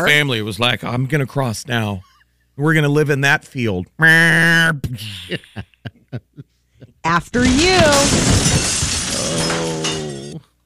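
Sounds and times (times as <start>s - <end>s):
speech: 0.0s - 9.9s
debris clattering and tinkling: 7.3s - 10.4s
shattering glass crash: 7.3s - 10.4s.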